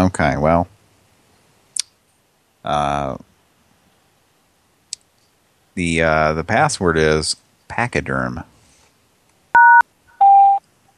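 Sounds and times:
speech: 0:00.0 - 0:00.7, 0:02.6 - 0:03.3, 0:05.8 - 0:08.5
longer, lower steady voicemail beep: 0:09.6 - 0:10.6
telephone keypad dual-pitched keypress tone on a voicemail line: 0:09.6 - 0:10.6.

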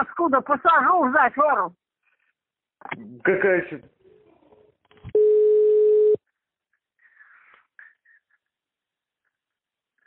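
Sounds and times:
speech: 0:00.0 - 0:01.8, 0:02.8 - 0:04.0
loud steady mid-pitched telephone dial tone: 0:05.2 - 0:06.2.

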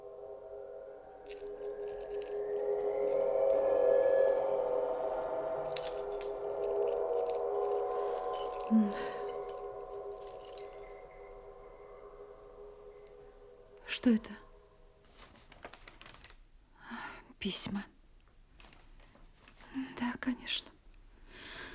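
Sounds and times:
keys jangling and clinking: 0:01.2 - 0:11.4
speech: 0:14.0 - 0:14.4, 0:17.4 - 0:17.9, 0:20.5 - 0:20.7.

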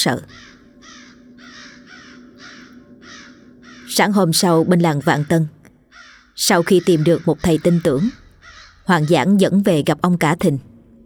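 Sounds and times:
speech: 0:00.0 - 0:00.5, 0:03.9 - 0:05.6, 0:06.4 - 0:08.2, 0:08.8 - 0:10.7
crows cawing overhead: 0:00.0 - 0:04.1, 0:05.1 - 0:09.5.

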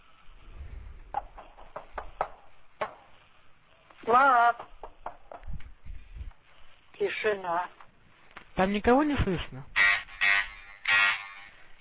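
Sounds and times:
quiet hiss: 0:00.0 - 0:11.7
knocking on a door: 0:01.1 - 0:03.0, 0:04.6 - 0:05.5
speech: 0:04.1 - 0:04.7, 0:07.0 - 0:07.8, 0:08.6 - 0:09.8.

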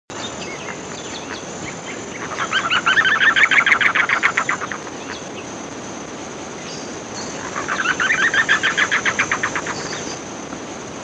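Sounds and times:
steady hiss of background noise: 0:00.1 - 0:11.0
Chotoy spinetail Schoeniophylax phryganophilus calling rapid harsh notes: 0:00.3 - 0:05.6, 0:06.8 - 0:10.2.

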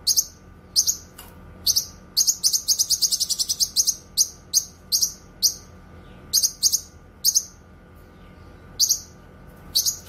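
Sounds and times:
faint steady hum: 0:00.0 - 0:10.0
streaked spiderhunter song with chipping notes and rattling run: 0:00.0 - 0:10.0.

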